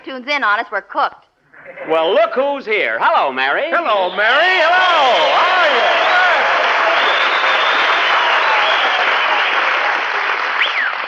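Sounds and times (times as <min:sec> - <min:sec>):
speech: 0:00.1 - 0:06.0
audience cheers: 0:03.8 - 0:11.0
crowd applauding: 0:03.8 - 0:11.0.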